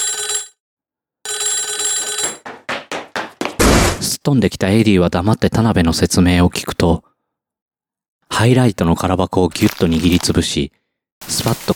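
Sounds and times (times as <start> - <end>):
telephone bell ringing: 0.0 - 0.6, 1.3 - 2.6
speech: 4.2 - 7.1, 8.4 - 11.7.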